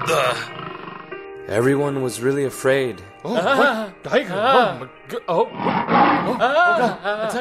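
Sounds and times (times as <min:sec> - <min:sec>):
speech: 0:00.0 - 0:00.6, 0:01.5 - 0:07.3
human voice imitating a tiger's roar with growling bursts: 0:00.0 - 0:00.9.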